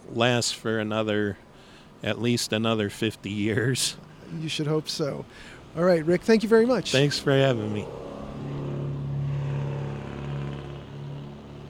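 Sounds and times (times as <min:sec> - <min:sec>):
speech: 0:00.2 - 0:01.4, 0:02.0 - 0:08.1
Sunbeam sports car engine driving past: 0:05.6 - 0:11.6.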